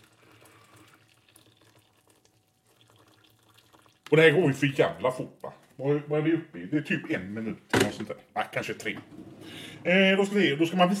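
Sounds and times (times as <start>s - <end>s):
hot water being poured: 0.0s - 5.8s
speech: 4.1s - 10.9s.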